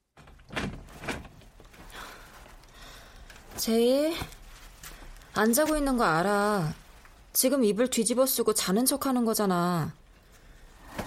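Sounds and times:
bedroom door opening with a creaky swing: 0.1 - 1.7
faint rustling: 0.2 - 7.4
speech: 3.6 - 4.4, 5.4 - 6.8, 7.4 - 10.0.

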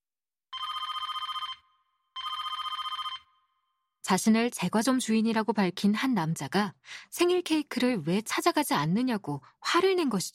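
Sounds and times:
telephone bell ringing: 0.5 - 3.8
speech: 4.1 - 10.3.

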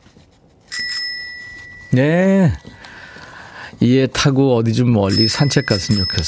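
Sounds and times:
bicycle bell ringing: 0.7 - 2.2, 5.1 - 6.2
speech: 1.9 - 2.6, 3.8 - 6.2.

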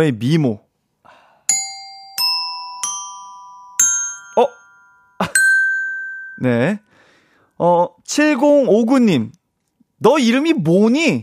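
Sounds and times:
speech: 0.0 - 0.6, 4.4 - 4.6, 6.4 - 6.9, 7.6 - 9.4, 10.0 - 11.2
ding-dong correct-answer chime: 1.5 - 6.9.

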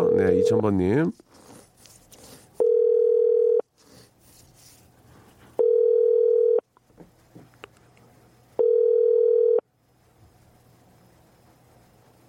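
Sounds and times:
telephone ringback tone while a call is placed: 0.0 - 0.7, 2.6 - 3.6, 5.6 - 6.6, 8.6 - 9.6
faint noise: 0.0 - 12.2
speech: 0.3 - 1.4.

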